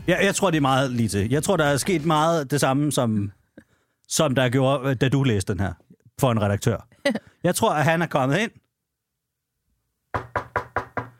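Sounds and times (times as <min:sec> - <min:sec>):
speech: 0:00.0 - 0:03.4, 0:04.1 - 0:08.6
knocking on a door: 0:10.1 - 0:11.1.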